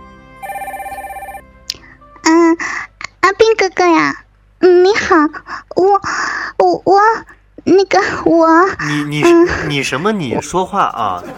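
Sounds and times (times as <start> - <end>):
radio show hotline telephone ringing with fast warbling trill: 0.4 - 1.4
speech: 3.5 - 11.3.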